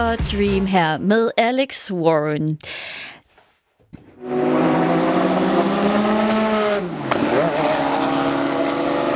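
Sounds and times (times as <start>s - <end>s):
speech: 0.0s - 3.1s, 4.2s - 5.1s
race car engine howling at the Le Mans 24-hour race: 4.2s - 9.1s.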